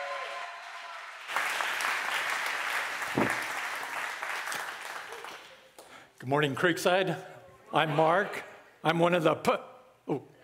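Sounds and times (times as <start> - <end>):
large crowd applauding: 0.0 - 5.9
speech: 6.2 - 10.3.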